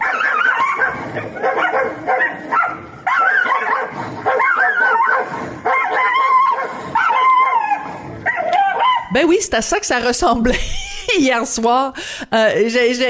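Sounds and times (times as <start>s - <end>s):
several small dogs yapping and barking: 0.0s - 9.1s
speech: 1.2s - 2.6s, 9.2s - 13.0s
laughter: 10.4s - 11.3s.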